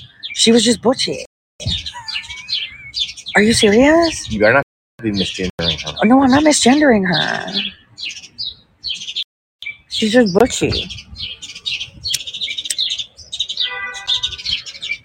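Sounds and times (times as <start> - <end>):
birds chirping: 0.0 - 15.0
speech: 0.4 - 1.8, 3.4 - 8.2, 10.0 - 11.8.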